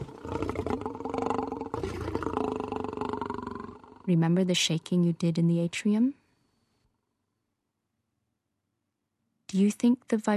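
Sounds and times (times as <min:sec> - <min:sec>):
lion roaring: 0:00.0 - 0:04.1
speech: 0:04.1 - 0:06.2, 0:09.5 - 0:10.3.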